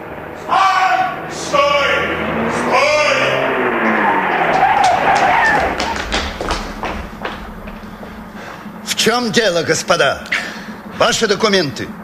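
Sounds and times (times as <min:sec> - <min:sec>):
car tires squealing while braking hard: 0:00.0 - 0:11.2
car braking hard and skidding to a stop: 0:01.9 - 0:09.0
thuds and clicks: 0:04.6 - 0:08.6
speech: 0:09.0 - 0:10.4, 0:11.0 - 0:12.0.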